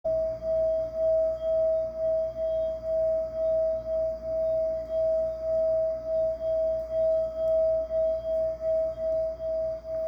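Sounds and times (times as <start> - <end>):
coppery brown meditation singing bowl ringing in E: 0.1 - 10.0.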